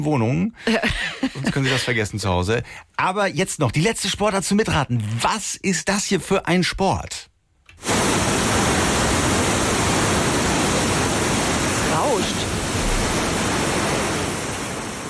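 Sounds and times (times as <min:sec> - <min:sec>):
speech: 0:00.0 - 0:07.9
laughter: 0:00.6 - 0:02.0
rushing water of artificial river surf wave: 0:07.8 - 0:15.0.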